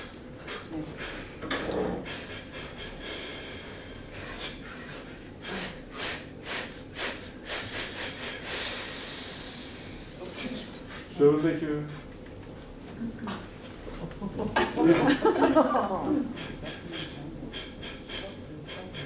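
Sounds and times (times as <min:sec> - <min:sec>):
deep breathing during a guided neck-stretching exercise: 0:00.4 - 0:11.1, 0:16.2 - 0:19.0
speech: 0:11.2 - 0:12.0
laughter: 0:13.2 - 0:17.6.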